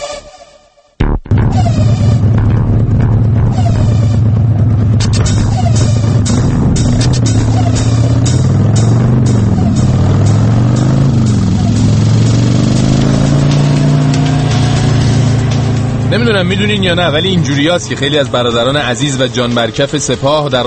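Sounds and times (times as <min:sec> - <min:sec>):
motorcycle engine revving: 0:01.0 - 0:20.6
speech: 0:16.1 - 0:20.6.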